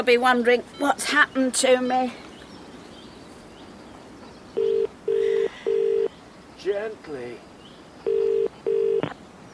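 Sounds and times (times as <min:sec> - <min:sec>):
speech: 0:00.0 - 0:02.3, 0:06.6 - 0:07.5
phone line dialing beeps: 0:04.6 - 0:06.1, 0:08.1 - 0:09.1.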